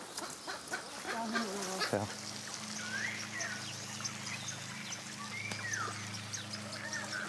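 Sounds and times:
weakened lame stork giving strained honking calls while being caught: 0.2s - 7.2s
steady low drone: 2.0s - 7.2s.

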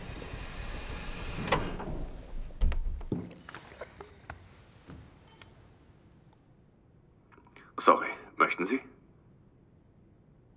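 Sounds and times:
doors sliding open with a pneumatic hiss: 0.0s - 2.9s
speech: 7.8s - 8.9s.

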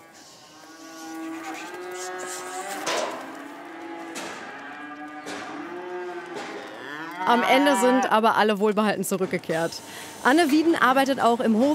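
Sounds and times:
calves mooing while being driven onto a transport trailer: 0.0s - 8.3s
speech: 7.3s - 11.7s.

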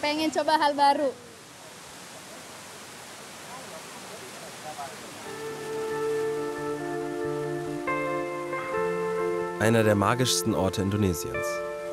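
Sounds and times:
speech: 0.0s - 1.3s, 9.6s - 11.8s
roar of falling water from a waterfall in southern East Java Indonesia: 0.1s - 9.2s.

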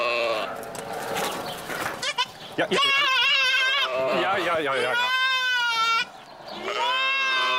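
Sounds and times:
young goat kid bleating for its mother: 0.0s - 0.5s, 2.0s - 7.5s.

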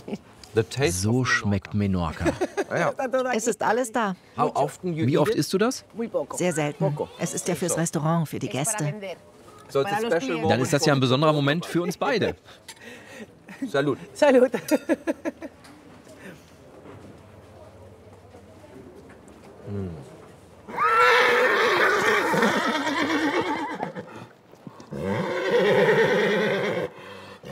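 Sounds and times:
speech: 0.1s - 15.6s, 19.7s - 20.1s
low murmur: 5.8s - 24.9s
horses neighing at a horse festival: 20.7s - 27.5s.

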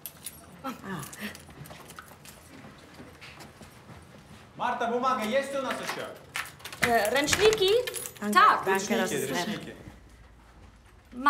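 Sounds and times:
keys jangling: 0.0s - 2.5s, 5.7s - 8.9s
speech: 0.6s - 1.5s, 4.6s - 6.2s, 6.9s - 9.9s
soft murmured voices: 8.7s - 10.0s.

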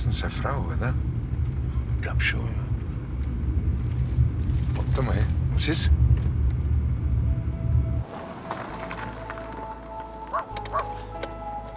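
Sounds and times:
speech: 0.0s - 1.2s, 2.0s - 2.7s, 5.0s - 6.0s
steady rumble like a low engine drone: 0.0s - 11.7s
dog barking: 10.3s - 11.0s.

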